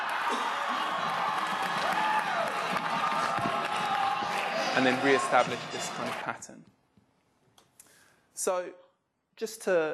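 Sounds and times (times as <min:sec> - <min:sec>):
crowd cheering and whoops: 0:00.0 - 0:06.2
audience clapping: 0:00.0 - 0:06.5
speech: 0:04.8 - 0:06.8, 0:08.4 - 0:08.8, 0:09.4 - 0:09.9.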